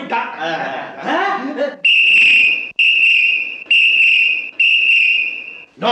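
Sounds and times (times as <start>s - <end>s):
laughter: 0.1s - 1.7s
shrill whistle blasts: 1.8s - 5.7s.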